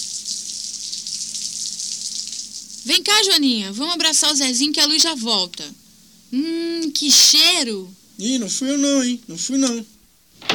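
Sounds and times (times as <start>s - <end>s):
cold water running in a bathroom: 0.0s - 8.3s
speech: 2.8s - 10.0s.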